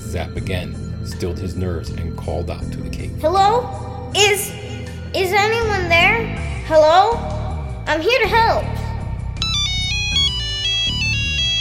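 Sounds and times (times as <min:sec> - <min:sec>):
speech: 0:00.1 - 0:08.7
phone ringtone playing a bright melodic electronic tune: 0:09.4 - 0:11.5.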